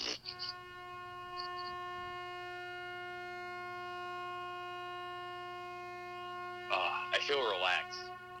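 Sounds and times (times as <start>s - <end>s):
short squeaks: 0.0s - 0.6s, 1.4s - 1.8s
loud truck horn blaring: 0.0s - 8.3s
speech: 6.7s - 8.3s.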